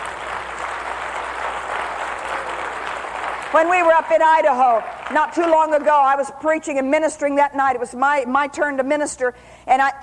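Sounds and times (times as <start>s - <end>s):
congregation applauding: 0.0s - 6.0s
speech: 3.5s - 10.0s.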